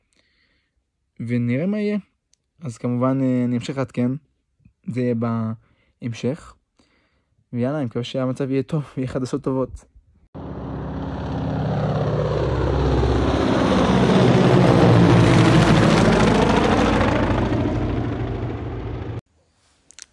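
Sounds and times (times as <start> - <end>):
speech: 1.2 - 6.6, 7.5 - 9.9
rescue helicopter on an airlift passing overhead: 10.4 - 19.2.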